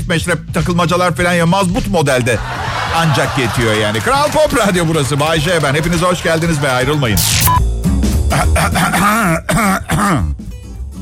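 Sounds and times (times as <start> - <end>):
speech: 0.1 - 7.7, 8.3 - 10.4
laughter: 2.3 - 7.2
theatrical throat clearing and coughs: 8.3 - 10.4.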